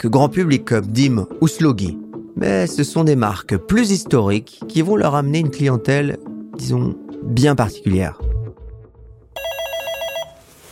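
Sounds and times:
speech: 0.0 - 8.3
telephone bell ringing before a call is answered: 9.4 - 10.6.

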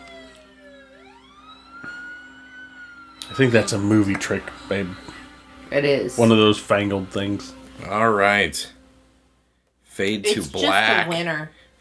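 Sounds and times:
emergency vehicle siren wailing: 0.0 - 7.4
speech: 3.3 - 8.8, 10.0 - 11.6.

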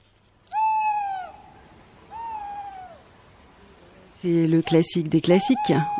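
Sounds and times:
tawny owl hooting: 0.5 - 3.1, 5.2 - 5.9
speech: 4.2 - 5.9.

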